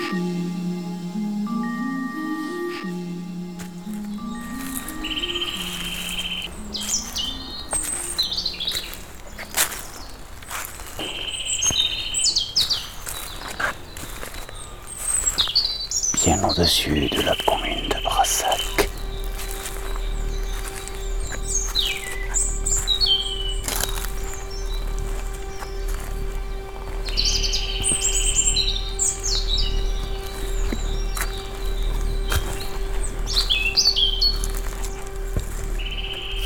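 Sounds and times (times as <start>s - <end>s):
birds chirping and trilling: 0.0s - 36.4s
low outdoor hum: 0.0s - 36.4s
speech: 16.6s - 18.7s.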